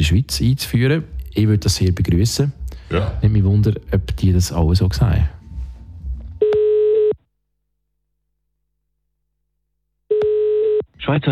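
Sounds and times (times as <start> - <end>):
speech: 0.0 - 5.4, 11.0 - 11.3
phone dialing: 6.4 - 7.2, 10.1 - 10.9
telephone ringback tone: 6.4 - 7.2, 10.1 - 10.8.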